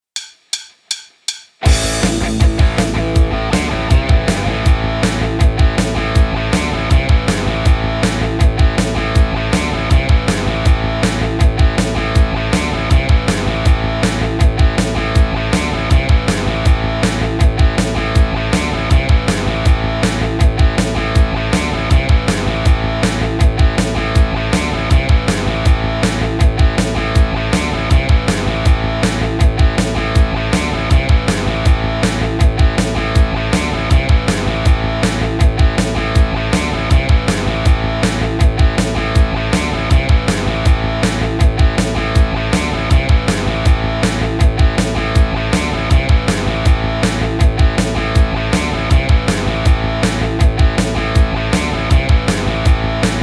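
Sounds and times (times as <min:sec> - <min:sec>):
guitar jam track: 0:01.6 - 0:53.2.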